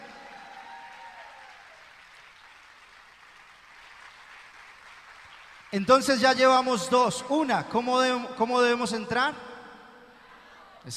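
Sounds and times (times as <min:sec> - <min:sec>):
loud applause from a large audience: 0:00.0 - 0:06.1
speech: 0:05.7 - 0:09.5.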